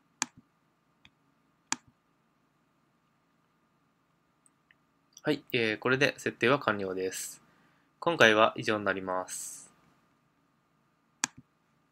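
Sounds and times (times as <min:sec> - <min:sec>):
computer mouse button clicks on a website settings page: 0:00.2 - 0:02.0, 0:11.2 - 0:11.5
speech: 0:05.2 - 0:07.4, 0:08.0 - 0:09.6.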